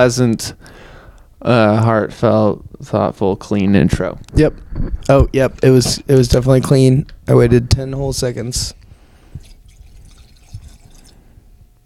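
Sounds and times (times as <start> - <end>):
speech: 0.0 - 0.8, 1.4 - 8.8
bourbon pouring into a glass: 9.4 - 11.2.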